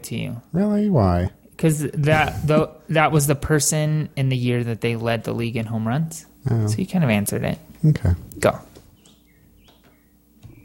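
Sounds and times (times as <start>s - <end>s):
speech: 0.0s - 8.7s
low hum: 0.0s - 10.6s
bird chirping: 8.8s - 10.6s.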